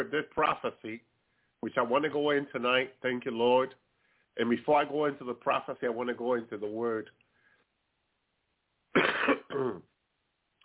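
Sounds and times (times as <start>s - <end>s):
speech: 0.0s - 3.8s, 4.4s - 7.2s, 9.5s - 9.9s
person clearing throat: 8.9s - 9.9s.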